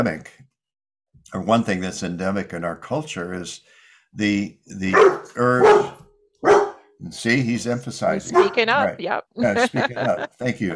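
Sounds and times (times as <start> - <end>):
speech: 0.0 - 0.4, 1.3 - 6.0, 7.0 - 10.7
dog barking: 4.9 - 6.8, 8.3 - 8.6
laughter: 7.1 - 10.7.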